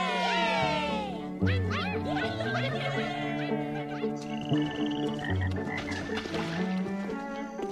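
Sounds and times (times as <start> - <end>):
laughter: 0.0 - 4.6
chorus of frogs croaking at a pond: 4.0 - 6.7.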